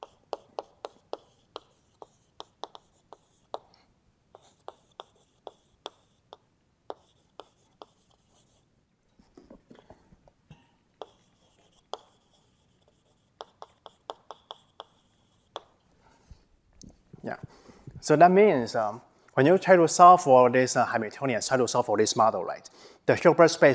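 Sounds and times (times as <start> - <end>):
handwriting taps and scratches during a physics lecture: 0.0 - 8.6, 11.0 - 15.9
speech: 17.2 - 23.7.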